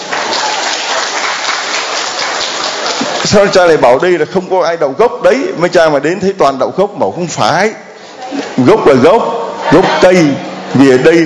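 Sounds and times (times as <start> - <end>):
audience applause: 0.0 - 3.8
speech: 3.3 - 7.8, 8.6 - 11.2.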